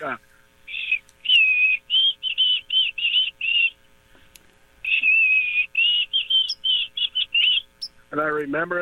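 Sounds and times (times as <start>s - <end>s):
speech: 0.0s - 0.3s, 8.2s - 8.8s
white-throated sparrow singing: 0.7s - 3.8s, 4.8s - 7.9s.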